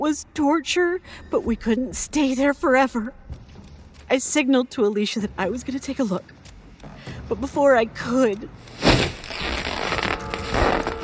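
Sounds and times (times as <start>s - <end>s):
speech: 0.0s - 3.3s, 4.1s - 6.4s, 7.3s - 9.1s
bloody scythe blade slicing down through a curtain: 8.8s - 11.0s.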